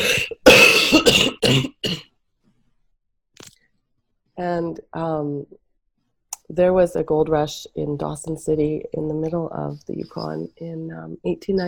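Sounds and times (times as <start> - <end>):
harsh forceful coughing fit: 0.0 - 2.0
speech: 1.5 - 1.8, 4.4 - 5.6, 6.5 - 11.6.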